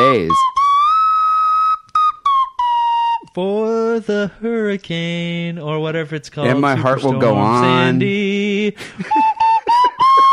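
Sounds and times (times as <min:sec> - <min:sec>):
slide whistle playing a short solo tune: 0:00.0 - 0:03.5, 0:09.0 - 0:10.3
speech: 0:03.4 - 0:09.3
laughter: 0:08.8 - 0:10.3.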